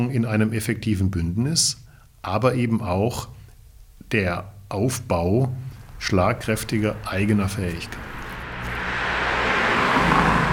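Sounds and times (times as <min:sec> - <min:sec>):
speech: 0:00.0 - 0:03.4, 0:04.1 - 0:08.2
passing vehicle on a country road in a small village near Kraków: 0:05.6 - 0:10.5.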